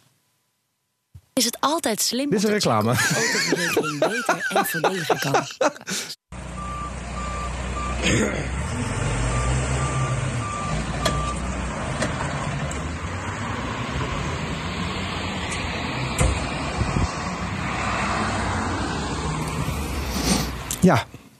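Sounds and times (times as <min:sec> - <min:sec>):
speech: 0:01.4 - 0:06.2, 0:20.8 - 0:21.2
person laughing: 0:02.9 - 0:06.2
large truck engine rumbling: 0:02.9 - 0:21.1
large truck reversing alarm beeping: 0:06.4 - 0:12.0.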